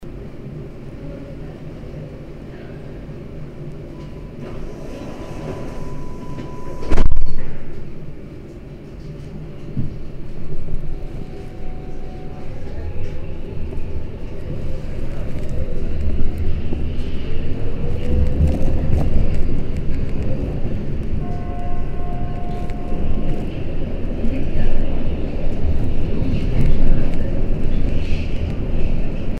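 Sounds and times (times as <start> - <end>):
subway train departing, heard from inside: 0.0 - 29.3.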